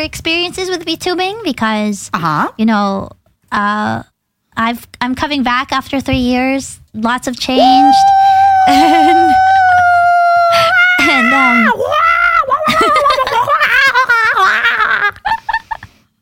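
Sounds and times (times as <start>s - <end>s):
speech: 0.0s - 9.4s, 11.3s - 12.0s
person screeching excitedly, high-pitched warbling and squealing: 7.5s - 15.2s
person giggling: 8.4s - 9.7s, 12.5s - 15.9s.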